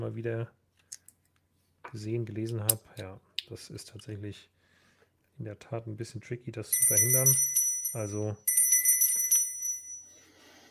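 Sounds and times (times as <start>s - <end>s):
speech: 0.0s - 0.6s, 1.9s - 4.6s, 5.4s - 8.5s
bright high-pitched bell ringing: 6.7s - 10.4s.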